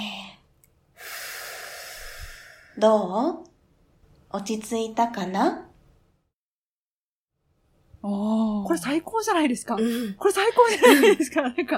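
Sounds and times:
deep breath in and out taken to calm down: 0:00.9 - 0:02.8
speech: 0:02.8 - 0:03.5, 0:04.3 - 0:05.7, 0:08.0 - 0:11.7.

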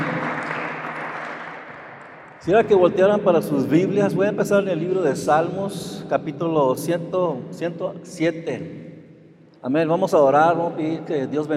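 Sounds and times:
audience applauding loudly: 0:00.0 - 0:02.6
speech: 0:02.4 - 0:08.8, 0:09.6 - 0:11.5.

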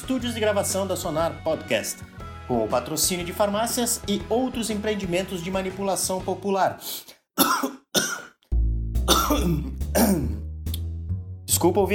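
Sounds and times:
speech: 0:00.1 - 0:07.5, 0:09.4 - 0:10.3, 0:11.6 - 0:11.9
person coughing: 0:07.4 - 0:08.4, 0:09.1 - 0:10.4
throat-clearing: 0:07.4 - 0:08.4, 0:09.0 - 0:10.4.

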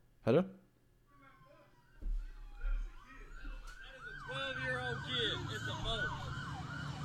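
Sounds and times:
speech: 0:00.3 - 0:00.6, 0:05.0 - 0:06.3
police car sirens wailing from a played video filmed in America: 0:01.2 - 0:07.0
low rumbling traffic noise of police cars driving past: 0:02.8 - 0:07.0.

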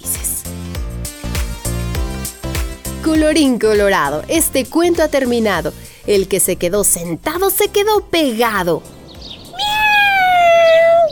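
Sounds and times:
speech: 0:03.0 - 0:09.0
cat meowing: 0:09.5 - 0:11.1.

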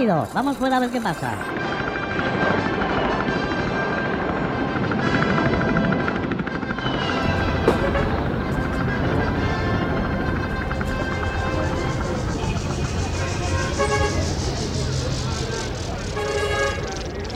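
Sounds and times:
speech: 0:00.0 - 0:02.8
helicopter rotor chop overhead: 0:00.0 - 0:17.3.

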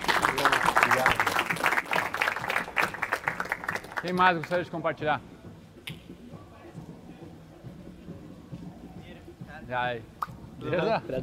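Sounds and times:
audience applauding with many hands clapping: 0:00.0 - 0:04.7
speech: 0:04.0 - 0:05.3, 0:09.7 - 0:11.2.

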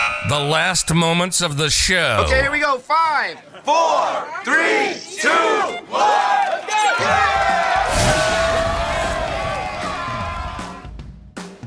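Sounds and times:
speech: 0:00.2 - 0:07.6
crowd cheering and roaring: 0:03.6 - 0:11.0
whoops and yells from crowd: 0:06.7 - 0:10.9.

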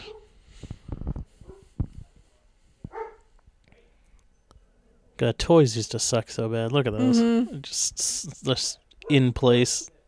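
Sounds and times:
dog barking in short sharp bursts: 0:00.0 - 0:00.3, 0:01.4 - 0:01.7, 0:02.9 - 0:03.3
speech: 0:05.2 - 0:09.9.

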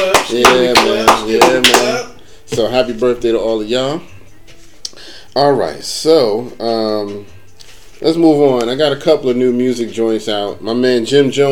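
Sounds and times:
sharp hand clapping: 0:00.0 - 0:02.1
sustained tonal bed of music or voice: 0:00.0 - 0:04.2, 0:04.8 - 0:11.5
speech: 0:00.3 - 0:00.9, 0:01.5 - 0:04.2, 0:05.3 - 0:07.4, 0:08.0 - 0:11.5.

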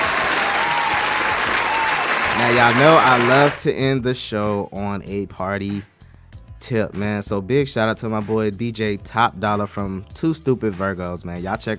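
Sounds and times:
group applauding: 0:00.0 - 0:03.6
speech: 0:02.4 - 0:05.9, 0:06.6 - 0:11.7.

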